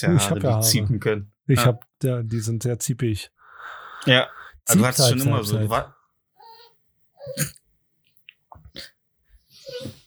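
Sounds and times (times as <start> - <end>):
speech: 0.0 - 6.0, 7.2 - 7.6
dog's breathy snorts: 3.4 - 4.7, 6.4 - 7.6, 8.7 - 10.0
dog whining in high-pitched bursts: 6.4 - 7.6, 9.5 - 10.0.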